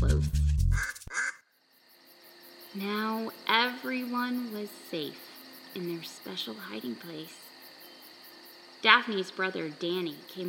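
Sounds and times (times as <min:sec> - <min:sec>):
ducks quacking: 0:00.7 - 0:01.4
speech: 0:02.8 - 0:07.5, 0:08.8 - 0:10.4.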